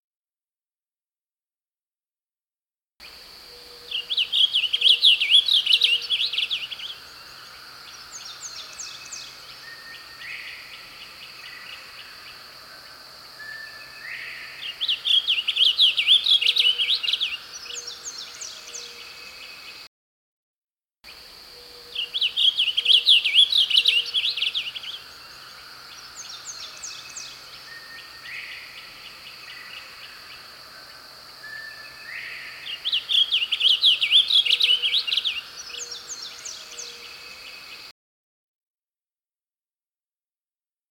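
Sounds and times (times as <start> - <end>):
Blue Grosbeak Passerina caerulea singing: 3.9 - 12.4, 13.4 - 19.4, 22.0 - 30.4, 31.5 - 37.2.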